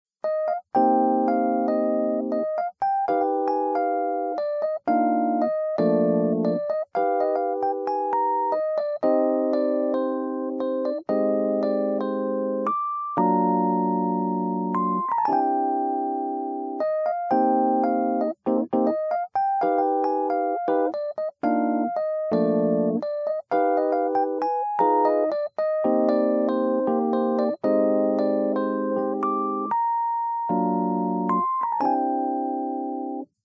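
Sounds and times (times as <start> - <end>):
1979 Fender Rhodes Mark I Stage electric piano with bright tone: 0.2 - 33.4.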